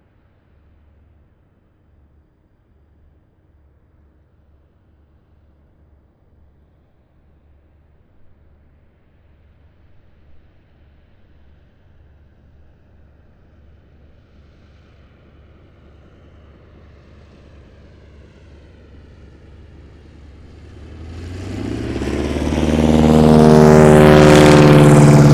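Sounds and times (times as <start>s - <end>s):
low-level flyby: 18.2s - 25.3s.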